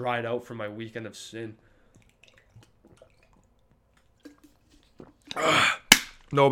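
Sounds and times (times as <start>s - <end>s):
speech: 0.0s - 1.7s, 5.4s - 6.4s
person sipping water: 1.6s - 6.0s.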